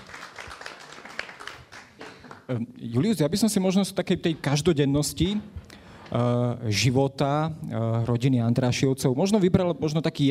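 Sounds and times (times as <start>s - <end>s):
audience at a discussion event applauding: 0.0s - 2.5s
speech: 2.5s - 10.2s.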